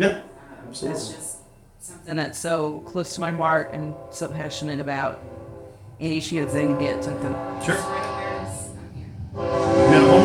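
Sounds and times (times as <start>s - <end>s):
speech: 0.0s - 5.4s, 6.0s - 8.1s, 9.4s - 10.2s
low rumble of rail noise: 0.0s - 10.2s
passing train horn: 2.5s - 10.2s.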